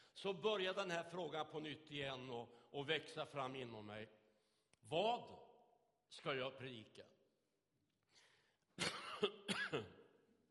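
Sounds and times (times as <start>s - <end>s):
speech: 0.2s - 4.2s, 4.8s - 5.5s, 6.1s - 7.2s, 9.2s - 10.0s
preacher coughing while getting over a feverish illness: 8.8s - 10.0s.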